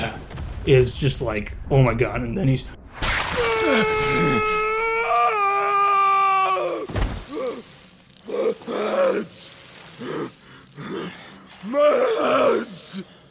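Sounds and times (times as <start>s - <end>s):
speech: 0.0s - 2.8s, 3.6s - 4.5s
man screaming in pain: 3.4s - 13.2s
faint hiss: 6.5s - 13.2s.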